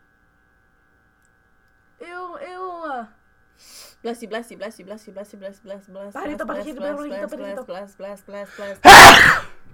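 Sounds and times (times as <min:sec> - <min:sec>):
speech: 0:02.4 - 0:09.5
loud explosive sneeze: 0:08.8 - 0:09.6.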